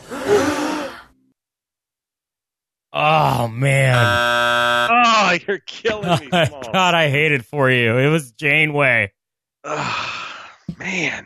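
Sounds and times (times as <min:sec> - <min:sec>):
single voice imitating a crowd's gasp: 0:00.0 - 0:01.1, 0:09.7 - 0:11.0
speech: 0:03.0 - 0:11.2
laughter: 0:04.9 - 0:07.4.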